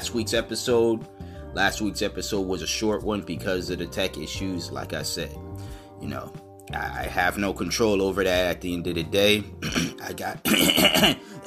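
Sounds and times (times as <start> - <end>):
speech: 0.0 - 5.4, 6.0 - 11.3
harsh throat clearing: 9.6 - 11.4.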